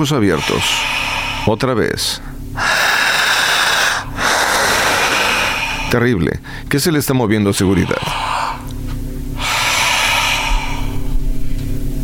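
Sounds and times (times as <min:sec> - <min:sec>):
speech: 0:00.0 - 0:02.8, 0:05.9 - 0:08.8
person breathing hard with diaphragm, chest and shoulders: 0:00.0 - 0:06.7, 0:07.6 - 0:11.5
low steady hum: 0:00.0 - 0:12.0
forceful inhalations drawn sharply through the nose: 0:00.2 - 0:01.6, 0:02.6 - 0:06.7, 0:07.6 - 0:11.3.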